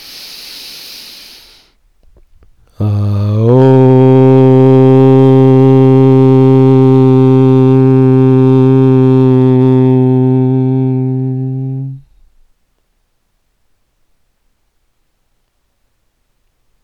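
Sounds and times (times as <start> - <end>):
deep breath in: 0.0 - 4.2
group chanting Om during a guided meditation: 2.6 - 12.2.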